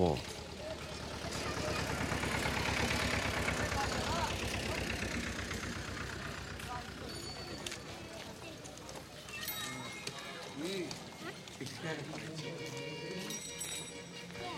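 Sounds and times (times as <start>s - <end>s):
speech: 0.0s - 0.4s
street ambience: 0.0s - 14.5s
heavy car engine passing: 0.3s - 7.9s.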